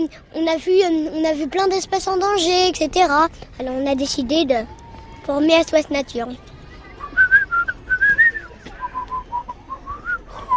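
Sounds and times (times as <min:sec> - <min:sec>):
speech: 0:00.0 - 0:06.5
person whistling a lively tune: 0:07.0 - 0:10.5.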